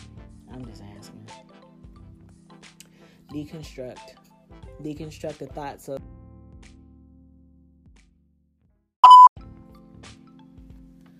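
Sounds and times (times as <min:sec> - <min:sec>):
speech: 0:03.3 - 0:04.2, 0:04.8 - 0:06.2
phone electronic ring tone for an incoming call: 0:09.0 - 0:09.3.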